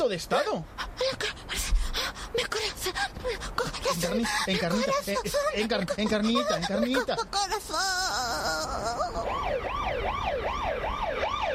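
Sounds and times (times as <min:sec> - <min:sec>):
speech: 0:00.0 - 0:01.7, 0:02.3 - 0:10.8
constant traffic noise: 0:00.0 - 0:11.5
laughter: 0:03.7 - 0:09.3
ambulance siren wailing: 0:08.2 - 0:11.5.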